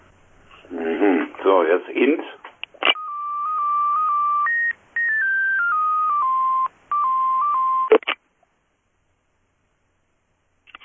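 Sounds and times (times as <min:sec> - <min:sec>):
speech: 0:01.0 - 0:02.4
electronic telephone dialing tones: 0:02.9 - 0:08.2.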